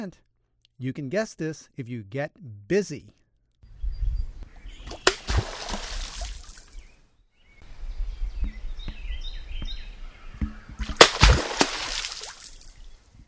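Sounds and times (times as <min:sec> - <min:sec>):
speech: 0:00.0 - 0:03.2
birds chirping and calling: 0:03.6 - 0:13.2
American beaver slapping its tail on water surface as it submerges: 0:04.9 - 0:06.8, 0:10.8 - 0:12.8.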